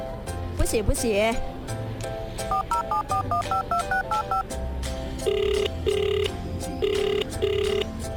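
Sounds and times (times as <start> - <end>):
speech: 0.6 - 1.8, 2.5 - 8.1
electronic telephone ringing tones: 2.5 - 4.4, 5.2 - 7.9
telephone keypad dialing beeps: 2.5 - 4.4, 5.2 - 7.9.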